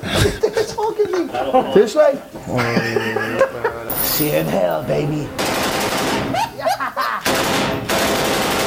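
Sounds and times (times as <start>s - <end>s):
laughter: 0.0s - 7.4s
speech: 1.0s - 6.0s
Tommy gun firing rapid bursts of automatic fire: 5.4s - 6.3s, 7.2s - 8.6s.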